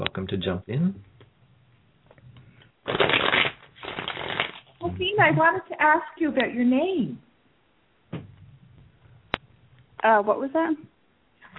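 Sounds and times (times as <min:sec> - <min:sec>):
speech: 0:00.2 - 0:01.1, 0:04.9 - 0:07.2, 0:10.0 - 0:10.9
deck of cards being riffle shuffled: 0:02.8 - 0:04.8.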